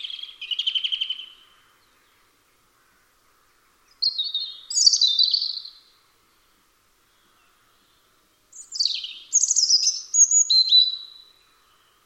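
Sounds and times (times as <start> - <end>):
European robin singing trills and thin whistles: 0.0 - 1.4, 4.0 - 5.8, 8.5 - 12.0.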